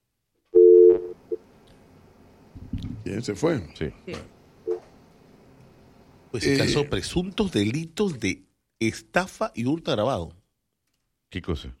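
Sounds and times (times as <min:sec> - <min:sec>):
incoming call telephone line tone: 0:00.6 - 0:01.4
speech: 0:03.1 - 0:04.4, 0:06.3 - 0:10.4, 0:11.3 - 0:11.7.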